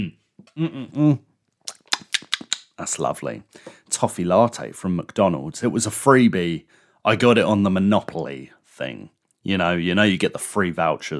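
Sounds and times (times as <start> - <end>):
short voiced hum: 0.0 - 1.2
speech: 0.0 - 1.3, 2.8 - 11.1.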